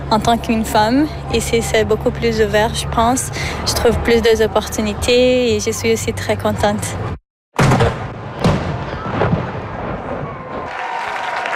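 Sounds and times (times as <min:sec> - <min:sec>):
speech: 0:00.1 - 0:07.2
deep cannon salute boom with rolling echo: 0:07.6 - 0:10.7.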